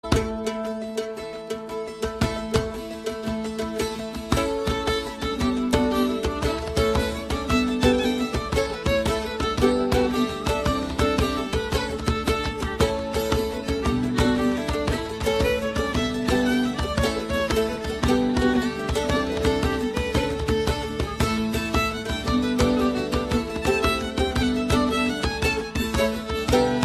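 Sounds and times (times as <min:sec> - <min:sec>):
jig music: 0:00.0 - 0:26.8.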